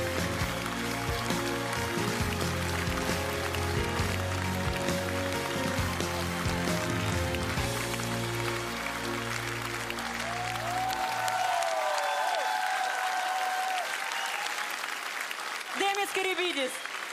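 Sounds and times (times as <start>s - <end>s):
music: 0.0s - 12.4s
large audience applause: 0.0s - 17.1s.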